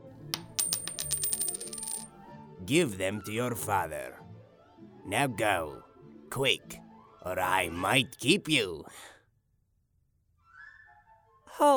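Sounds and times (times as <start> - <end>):
coins clinking as they are handed over: 0.3 - 2.1
speech: 2.6 - 4.3, 5.1 - 9.1, 11.6 - 11.7.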